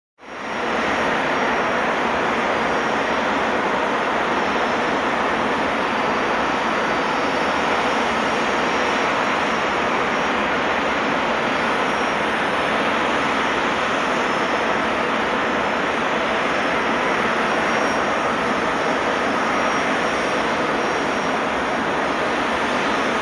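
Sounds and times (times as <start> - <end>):
airplane propeller engine up-close: 0.2 - 23.2.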